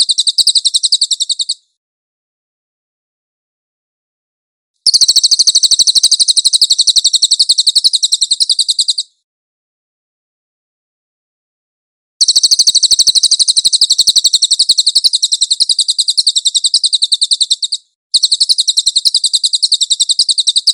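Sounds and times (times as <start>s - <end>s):
Cililin singing a fast high-pitched trill: 0.0s - 1.7s, 4.9s - 9.2s, 12.2s - 20.7s.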